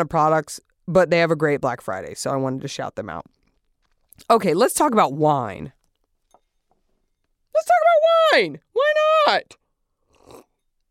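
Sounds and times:
speech: 0:00.0 - 0:03.4, 0:04.2 - 0:05.8, 0:07.6 - 0:09.6
sipping water: 0:10.0 - 0:10.8.

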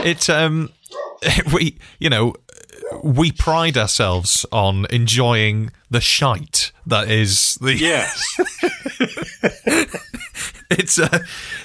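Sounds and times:
speech: 0:00.0 - 0:08.8, 0:10.7 - 0:11.6
dog barking: 0:00.9 - 0:01.2
laughter: 0:07.8 - 0:11.6.

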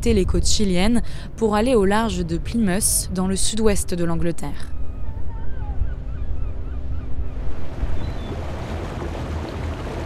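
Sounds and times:
speech: 0:00.0 - 0:04.8
boat engine drone at sea: 0:00.0 - 0:10.0
wind at sea off Plymouth: 0:00.0 - 0:10.0
seabird calls: 0:01.0 - 0:10.0
splashing water at sea off Plymouth: 0:07.7 - 0:10.0.

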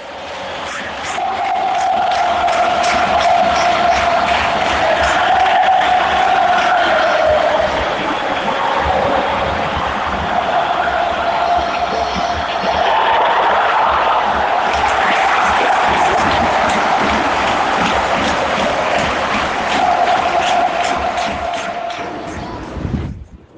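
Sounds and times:
huge stadium crowd at a football match cheering and whistling: 0:00.0 - 0:23.5.

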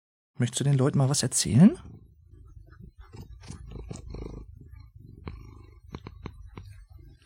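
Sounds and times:
speech: 0:00.4 - 0:02.0
male cat purring on a lap: 0:01.4 - 0:07.2.

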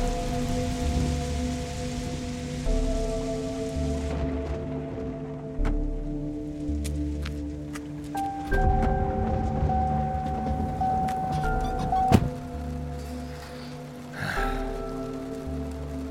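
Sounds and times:
rain falling: 0:00.0 - 0:16.1.

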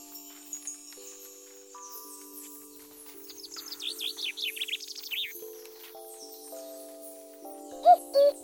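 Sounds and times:
soft sustained musical tones: 0:00.0 - 0:08.4
songbird chirping: 0:00.0 - 0:08.4
common cuckoo calling: 0:03.3 - 0:05.4, 0:07.7 - 0:08.4.

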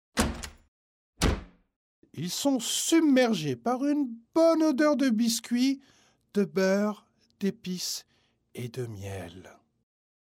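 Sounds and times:
door opening with a creak and a knock: 0:00.2 - 0:01.6
speech: 0:02.2 - 0:09.6.

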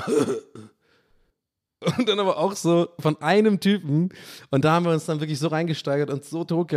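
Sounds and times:
speech: 0:00.0 - 0:00.7, 0:01.8 - 0:06.7
person imitating a cough: 0:00.0 - 0:00.8, 0:01.8 - 0:02.3.

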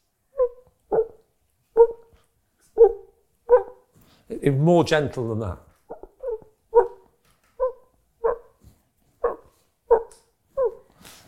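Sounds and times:
person imitating a faraway dog barking: 0:00.4 - 0:01.2, 0:01.8 - 0:02.1, 0:02.8 - 0:03.8, 0:05.9 - 0:08.5, 0:09.2 - 0:10.9
speech: 0:04.3 - 0:05.7.

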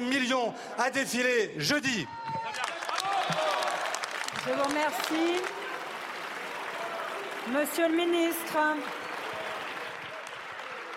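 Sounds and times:
speech: 0:00.0 - 0:02.4, 0:04.4 - 0:05.6, 0:07.4 - 0:09.0
members of a parliamentary assembly applauding a deputy's speech: 0:02.4 - 0:10.9.

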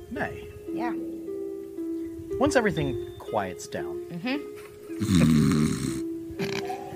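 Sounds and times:
speech: 0:00.1 - 0:01.1, 0:02.4 - 0:05.5
loud rasping snore: 0:05.0 - 0:06.7.

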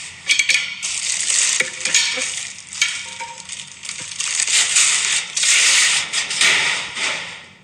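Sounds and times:
garbage thrown from the fourth floor tumbling down a trash chute: 0:00.3 - 0:06.0.

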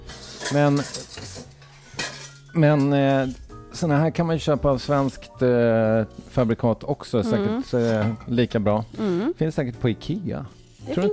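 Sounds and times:
French casserole pot being handled: 0:00.0 - 0:03.4, 0:07.8 - 0:08.8
speech: 0:00.5 - 0:01.0, 0:02.6 - 0:11.1.

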